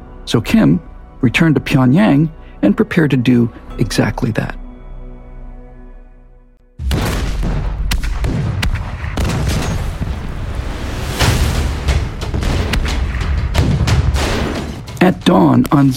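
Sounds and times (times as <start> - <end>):
speech: 0.3 - 4.6, 15.3 - 15.9
artillery barrage: 6.8 - 15.0.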